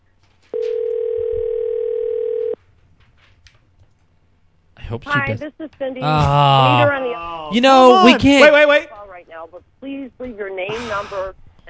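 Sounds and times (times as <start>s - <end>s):
faint noise: 0.0s - 11.6s
telephone ringback tone: 0.5s - 2.6s
speech: 4.9s - 8.9s, 9.5s - 11.4s.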